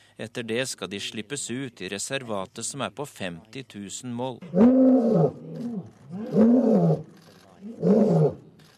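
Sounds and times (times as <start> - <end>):
speech: 0.2 - 8.4
lion roaring: 4.4 - 8.5.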